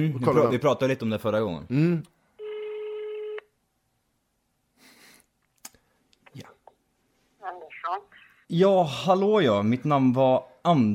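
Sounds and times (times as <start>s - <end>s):
speech: 0.0s - 2.2s, 7.9s - 10.9s
steady electronic phone tone: 2.4s - 3.4s.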